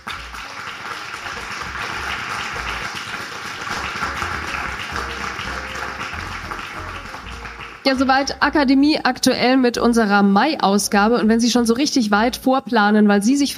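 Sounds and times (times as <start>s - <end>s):
room full of people clapping: 0.0s - 7.9s
speech: 7.9s - 13.5s.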